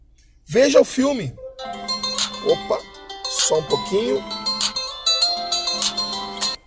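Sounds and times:
speech: 0.5s - 1.4s, 2.4s - 4.8s
mobile phone ringtone with bright electronic notes: 1.4s - 6.6s.

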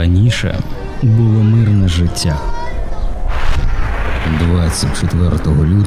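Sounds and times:
speech: 0.1s - 2.7s, 4.3s - 5.8s
constant low rumble: 3.1s - 5.8s
heavy gunfire and artillery shots: 3.3s - 5.8s.

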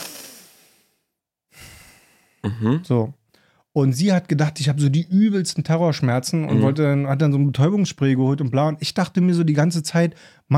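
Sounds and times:
exaggerated heavy breathing as in the dentist's chair: 1.5s - 2.8s
speech: 2.4s - 10.5s.

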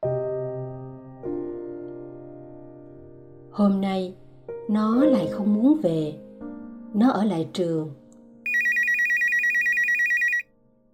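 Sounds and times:
speech: 3.6s - 6.2s, 6.9s - 8.0s
mobile phone ringtone ringing: 8.5s - 10.4s.

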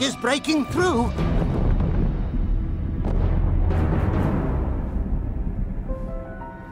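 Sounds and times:
speech: 0.0s - 1.4s
explosions: 1.2s - 6.2s
heavy artillery cannon fire: 1.3s - 5.8s.

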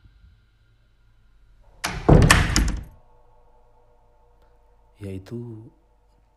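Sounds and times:
bathroom door slamming shut hard: 1.8s - 2.9s
speech: 5.0s - 5.8s.

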